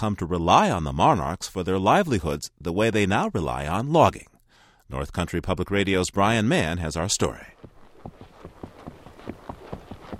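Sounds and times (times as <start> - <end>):
speech: 0.0 - 4.3, 4.9 - 7.6
horse hooves clopping up a forest trail through pine and oyamel fir in central Mexico: 7.2 - 10.1.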